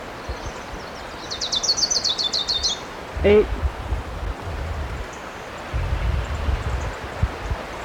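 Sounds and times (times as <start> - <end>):
orange-crowned warbler calling with a rapid high trill: 0.2 - 3.1
low rumbling background: 3.0 - 7.6
speech: 3.2 - 3.6.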